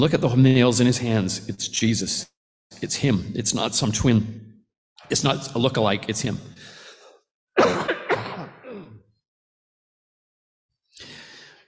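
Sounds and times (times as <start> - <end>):
speech: 0.0 - 6.7
person coughing from a lingering post-viral cough: 7.6 - 9.0.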